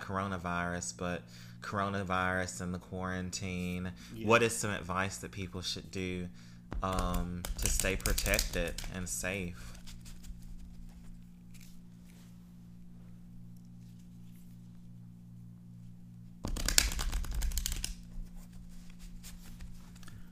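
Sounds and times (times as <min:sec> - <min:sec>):
low steady hum: 0:00.0 - 0:20.3
speech: 0:00.1 - 0:09.8
deck of playing cards riffle shuffled: 0:06.7 - 0:12.4, 0:16.4 - 0:20.3.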